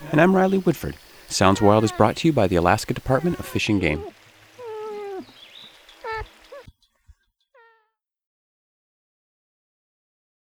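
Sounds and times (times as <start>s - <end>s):
moose calls: 0.0s - 6.7s
speech: 0.1s - 4.2s.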